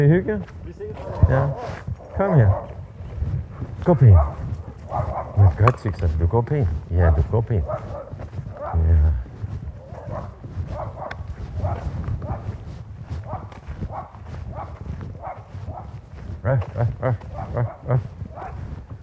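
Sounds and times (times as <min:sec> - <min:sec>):
speech: 0:00.0 - 0:08.1, 0:16.4 - 0:18.1
dog barking during an obedience training walk: 0:01.0 - 0:02.8, 0:04.0 - 0:05.8, 0:07.0 - 0:08.9, 0:09.8 - 0:18.8.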